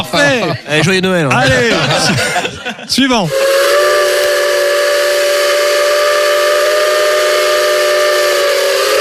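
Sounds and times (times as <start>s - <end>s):
laughter: 0.0s - 3.2s
speech: 0.1s - 3.6s
steam locomotive whistle with multi-tone chord: 3.3s - 8.9s.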